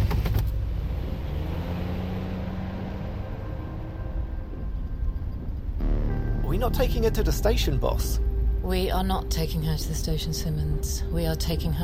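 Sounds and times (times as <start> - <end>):
police car engine rumbling as the car pulls away: 0.0 - 11.8
road noise: 0.0 - 11.8
speech: 6.6 - 11.8.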